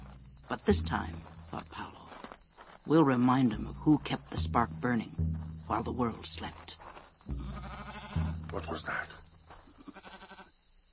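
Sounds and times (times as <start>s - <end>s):
speech: 0.5s - 1.8s, 2.9s - 7.4s, 8.5s - 9.2s
goat bleating: 7.3s - 8.6s, 9.6s - 10.5s.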